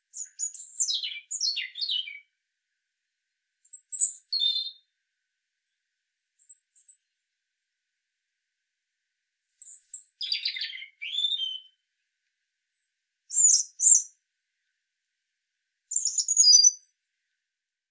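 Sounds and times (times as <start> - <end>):
European robin Erithacus rubecula singing: 0.0 - 2.4, 3.6 - 4.9, 6.4 - 7.1, 9.4 - 11.9, 13.3 - 14.2, 15.9 - 17.0.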